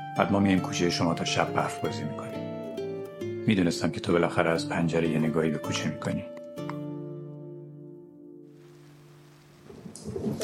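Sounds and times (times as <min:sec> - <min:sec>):
speech: 0:00.2 - 0:02.4, 0:03.4 - 0:06.4
steady rain hissing: 0:08.5 - 0:10.4.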